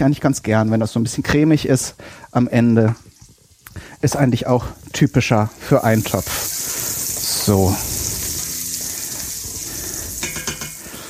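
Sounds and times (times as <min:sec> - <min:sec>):
speech: 0:00.0 - 0:03.1, 0:03.8 - 0:06.6, 0:07.4 - 0:07.9
water hissing and sputtering on a hot pan surface: 0:00.4 - 0:11.0
water pouring into a hot pan: 0:02.2 - 0:11.0.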